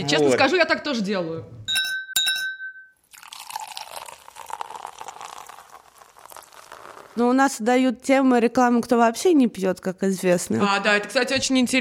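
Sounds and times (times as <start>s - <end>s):
speech: 0.0s - 1.6s, 7.2s - 11.8s
wine glasses clinking during a toast: 1.7s - 5.5s
liquid pouring into a glass: 3.0s - 7.2s.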